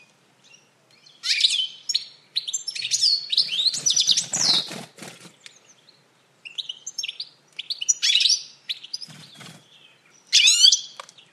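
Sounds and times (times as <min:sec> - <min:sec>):
bird calling with sharp sweeping chirps and twitters: 0:00.0 - 0:11.3
soft rustling flutters: 0:03.4 - 0:05.5, 0:09.0 - 0:09.8.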